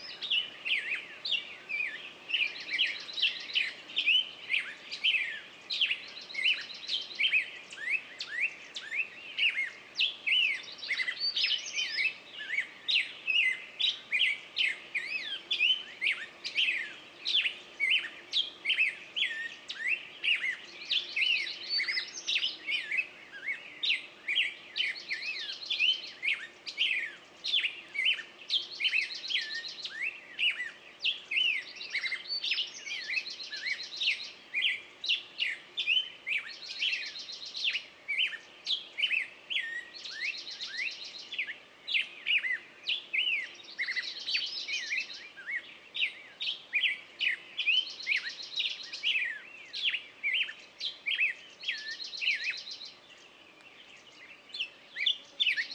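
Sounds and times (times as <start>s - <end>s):
birds in the morning on a meadow: 0.0s - 55.7s.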